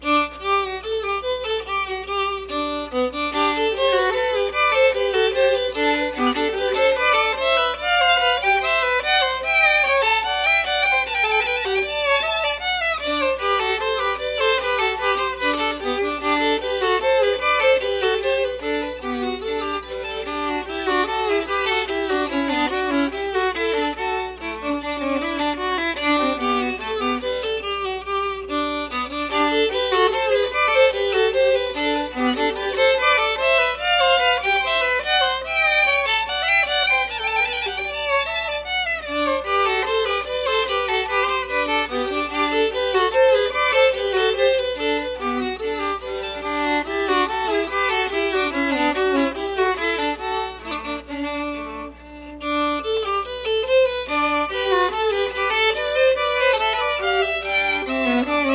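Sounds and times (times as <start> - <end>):
violin duet playing a bourree: 0.0 - 58.5.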